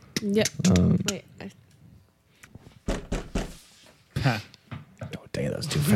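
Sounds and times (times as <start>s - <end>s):
speech: 0.2s - 1.6s, 4.3s - 4.5s, 5.6s - 5.9s
thumping knocks on a door: 2.9s - 3.6s.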